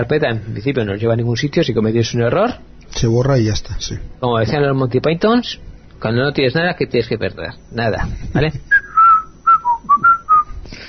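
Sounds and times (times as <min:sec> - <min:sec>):
speech: 0:00.0 - 0:08.7
person whistling a tune from the end of a song: 0:08.7 - 0:10.6.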